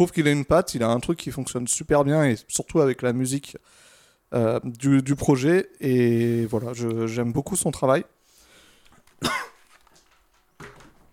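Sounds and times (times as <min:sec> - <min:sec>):
speech: 0:00.0 - 0:08.2
person coughing: 0:09.2 - 0:09.6.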